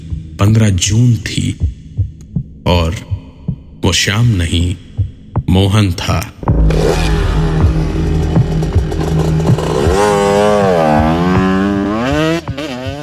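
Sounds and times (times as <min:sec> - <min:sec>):
speech: 0:00.5 - 0:01.8, 0:02.6 - 0:03.1, 0:03.8 - 0:04.9, 0:05.5 - 0:07.1
motorcycle engine idling and revving while pulling away with rider and passenger: 0:06.4 - 0:13.0.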